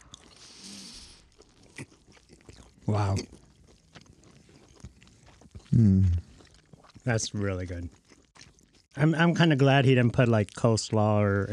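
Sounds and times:
crisp crunches biting into a sandwich: 0.0s - 7.1s, 7.9s - 8.8s
soft moist chewing of a sandwich: 0.0s - 11.5s
speech: 2.9s - 3.4s, 5.8s - 6.2s, 7.1s - 8.0s, 9.0s - 11.5s.

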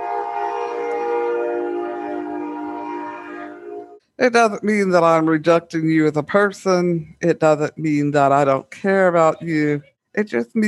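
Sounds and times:
train horn blaring in one long sustained chord: 0.0s - 4.0s
speech: 4.2s - 10.6s.

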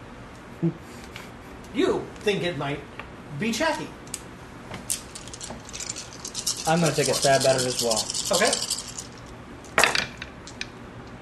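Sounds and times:
speech: 0.6s - 4.0s, 6.6s - 8.7s
dice rolled and tumbling onto a surface: 4.9s - 10.2s.

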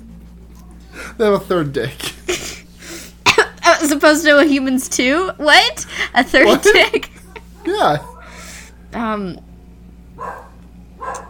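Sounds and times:
speech: 1.2s - 2.1s, 3.8s - 8.1s, 8.9s - 9.4s
laughter: 1.8s - 2.6s, 6.2s - 8.4s
excited dog yelping and barking: 7.6s - 8.4s, 10.2s - 11.2s.

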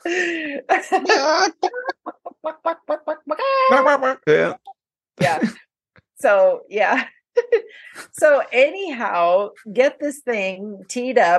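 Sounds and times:
speech: 0.0s - 1.8s, 6.3s - 7.1s, 8.2s - 11.3s
laughter: 0.7s - 4.2s
person imitating a chicken squawking and clucking: 3.1s - 4.7s.

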